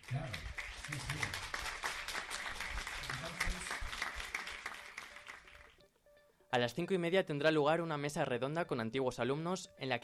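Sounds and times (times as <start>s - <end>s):
sustained audience applause: 0.0s - 5.7s
speech: 0.1s - 1.2s, 6.5s - 10.0s.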